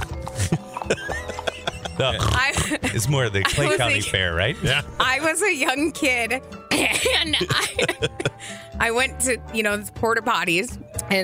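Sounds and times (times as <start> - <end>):
laughter: 0.0 - 5.0, 6.7 - 8.6
person imitating a horse snorting: 1.9 - 2.8
speech: 2.0 - 11.2.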